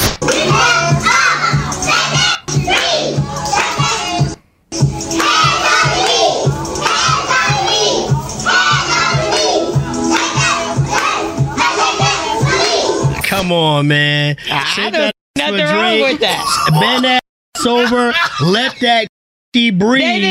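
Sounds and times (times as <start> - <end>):
group of toddlers singing karaoke together: 0.2 - 13.2
speech: 13.5 - 20.2
laughter: 14.4 - 15.1, 16.2 - 19.1.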